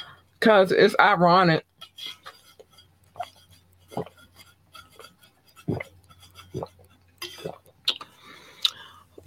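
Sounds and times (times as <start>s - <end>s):
speech: 0.4s - 2.2s
sipping and swallowing water: 2.2s - 9.2s.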